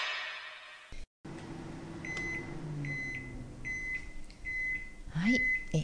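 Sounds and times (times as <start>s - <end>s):
microwave oven running at 600 watts with a container inside: 1.3s - 5.8s.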